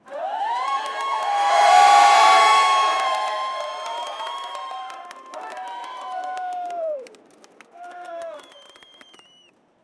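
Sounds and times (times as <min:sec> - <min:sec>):
crowd noise: 0:00.2 - 0:05.4
strong wind: 0:00.7 - 0:04.8.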